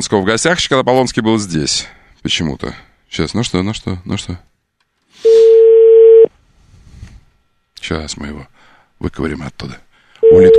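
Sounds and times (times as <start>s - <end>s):
speech: 0.0s - 4.5s, 7.9s - 10.5s
telephone ringback tone as an outgoing call is placed: 5.3s - 6.3s, 10.2s - 10.5s.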